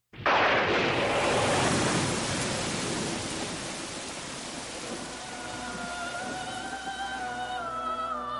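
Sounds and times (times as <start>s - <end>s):
thunder: 0.1s - 5.9s
heavy rain: 0.2s - 8.2s.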